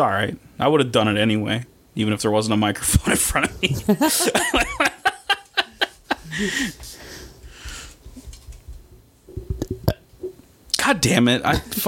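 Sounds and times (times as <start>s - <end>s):
speech: 0.0s - 5.0s, 6.4s - 7.0s, 10.9s - 11.8s
bursts of laughter and giggling: 3.3s - 7.0s
throaty burp: 9.6s - 10.1s.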